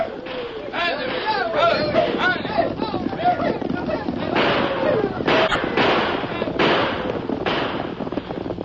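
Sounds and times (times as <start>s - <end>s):
wild overlapping shouts: 0.0s - 6.5s
continuous rumble of commotion: 0.0s - 8.6s
galloping hoofbeats: 0.0s - 8.6s
sharp gunshots: 4.3s - 7.9s.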